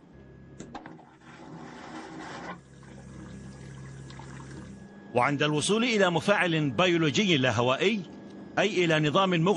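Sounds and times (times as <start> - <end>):
steady mechanical hum: 0.0 - 9.5
vacuum toilet flushing with suction whoosh: 0.8 - 4.9
running water: 1.2 - 4.8
speech: 5.2 - 9.5.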